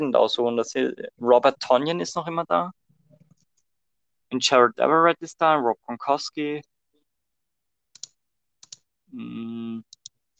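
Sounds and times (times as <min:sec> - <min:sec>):
speech: 0:00.0 - 0:02.8, 0:04.3 - 0:06.7, 0:09.1 - 0:09.6
typing on a computer keyboard in a chat: 0:08.0 - 0:08.8.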